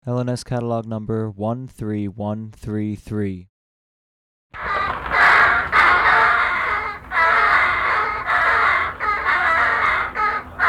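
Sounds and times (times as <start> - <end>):
speech: 0.0 - 3.5
young common crows giving harsh begging caws: 4.6 - 10.6.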